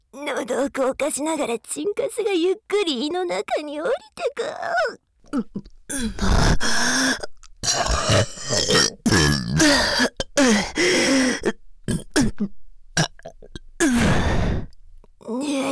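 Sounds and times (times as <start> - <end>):
speech: 0.3 - 8.9, 9.6 - 12.6, 13.8 - 14.6, 15.3 - 15.6
person burping loudly, some burps drawn out and croaky: 5.3 - 15.6.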